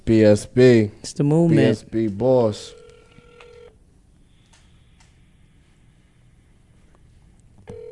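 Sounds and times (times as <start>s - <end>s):
speech: 0.1s - 2.8s
faint clicking hum: 2.0s - 5.8s, 6.8s - 7.8s
phone dial tone: 2.7s - 3.8s, 7.7s - 7.9s.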